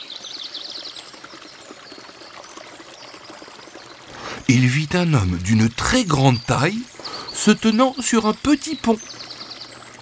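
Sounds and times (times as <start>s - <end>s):
flowing river water rushing: 4.1s - 9.2s
bird chirp: 4.1s - 9.9s
speech: 4.5s - 9.3s.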